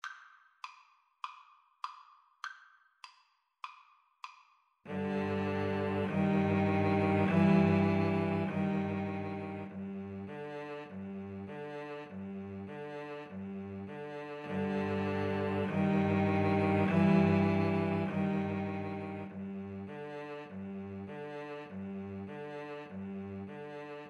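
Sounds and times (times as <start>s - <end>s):
viola and cello duet: 4.9s - 24.0s.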